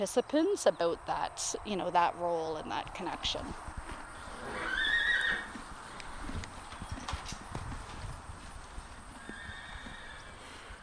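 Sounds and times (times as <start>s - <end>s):
speech: 0.0s - 3.8s
Ojibwe spirit horse hooves clip-clopping on a farm: 2.5s - 10.8s
Ojibwe spirit horse neighing on a farm: 4.2s - 6.3s, 9.2s - 10.8s.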